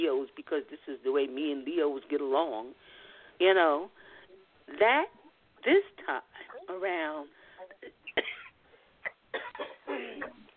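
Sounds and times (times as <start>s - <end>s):
speech: 0.5s - 4.0s, 4.7s - 8.4s
person coughing from something stuck in the throat: 8.1s - 10.4s.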